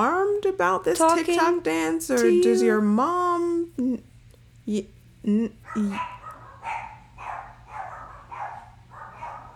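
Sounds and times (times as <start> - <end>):
speech: 0.0 - 4.0, 4.7 - 6.2
dogs barking excitedly: 5.6 - 9.5.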